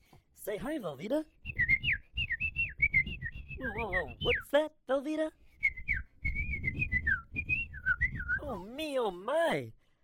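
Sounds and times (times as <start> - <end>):
speech: 0.4 - 1.4, 3.6 - 5.4, 8.5 - 9.8
person whistling an imitation of finch chirping: 1.4 - 4.6, 5.5 - 8.7.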